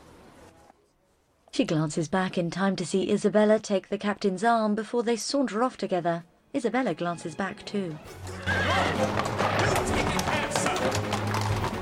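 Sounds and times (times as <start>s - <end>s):
speech: 1.6s - 9.3s
hooves of four dark horses pulling a carriage around a corner: 8.0s - 11.8s.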